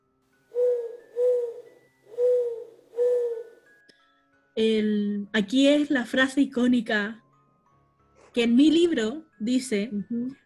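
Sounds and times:
owl hooting: 0.5 - 3.6
speech: 4.6 - 7.2, 8.4 - 10.4.

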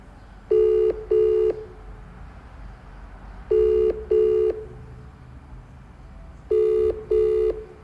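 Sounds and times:
telephone ringback tone on an outgoing call: 0.5 - 1.7, 3.5 - 4.7, 6.5 - 7.8.

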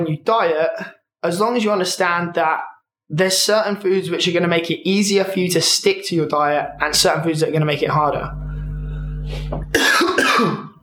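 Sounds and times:
speech: 0.0 - 8.4, 9.3 - 10.7
low steady hum: 6.5 - 9.8
person coughing harshly: 9.4 - 10.8.

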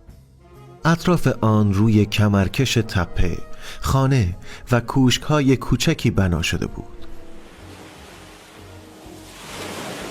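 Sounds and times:
speech: 0.8 - 7.0
sea surf breaking: 7.0 - 10.1.

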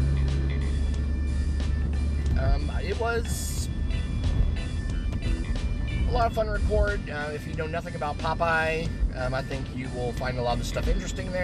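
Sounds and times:
truck passing by: 0.0 - 6.2
road rumble inside a moving vehicle: 0.0 - 11.4
speech: 2.6 - 3.5, 6.1 - 11.4.

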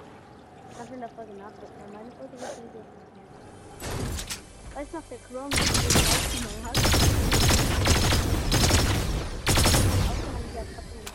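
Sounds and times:
speech: 0.9 - 3.4, 4.8 - 8.4, 10.6 - 11.0
video game gunfire in bursts: 5.5 - 10.6.

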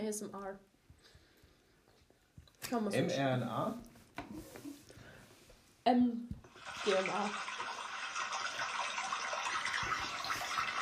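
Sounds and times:
speech: 0.1 - 1.2, 2.7 - 4.8, 5.8 - 7.6
water pouring into a container: 6.4 - 10.8.

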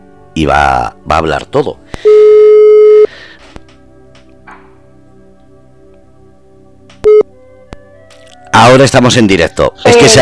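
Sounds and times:
speech: 0.4 - 2.3, 8.6 - 10.2
telephone busy tone beeps after a call is hung up: 2.0 - 3.1, 7.0 - 7.2.

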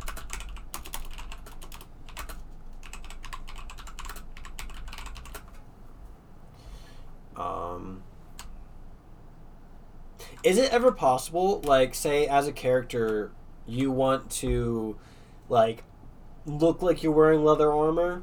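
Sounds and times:
rapid typing on a computer keyboard: 0.0 - 5.6
speech: 7.4 - 8.1, 10.4 - 18.2.

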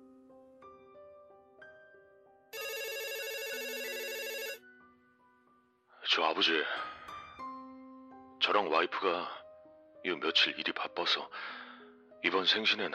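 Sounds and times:
telephone melodic electronic ringtone: 2.6 - 4.7
speech: 6.2 - 6.9, 8.5 - 9.4, 10.0 - 11.6, 12.2 - 12.9.

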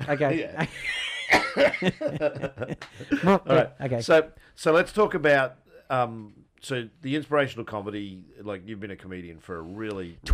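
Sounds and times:
laughter: 0.0 - 3.6
speech: 0.1 - 10.3
person clearing throat: 1.3 - 1.8.

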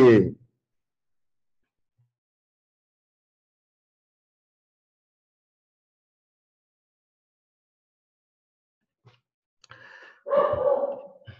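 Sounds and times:
speech: 0.1 - 0.4, 10.2 - 10.8
pet dog barking: 10.3 - 11.2.

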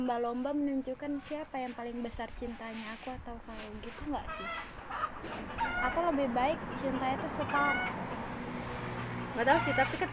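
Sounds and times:
speech: 0.0 - 8.1, 9.4 - 10.1
chicken clucking: 4.3 - 6.0, 6.9 - 8.0.

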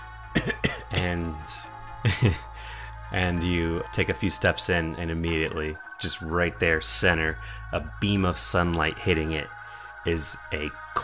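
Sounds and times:
rough voiced throat-clearing rasp: 0.4 - 1.1
dry coughs: 0.4 - 1.2
speech: 0.4 - 2.5, 3.1 - 11.0.

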